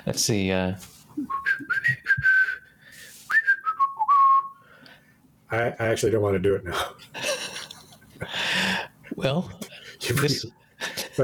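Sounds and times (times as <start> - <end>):
speech: 0.0 - 2.0, 5.5 - 7.2, 8.2 - 10.6
person whistling a tune: 1.2 - 2.7, 3.3 - 4.6.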